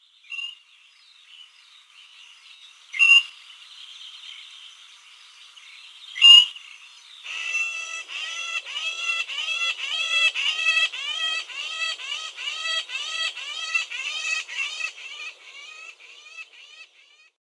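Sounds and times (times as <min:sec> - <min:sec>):
great grey shrike calling: 0:07.3 - 0:17.4.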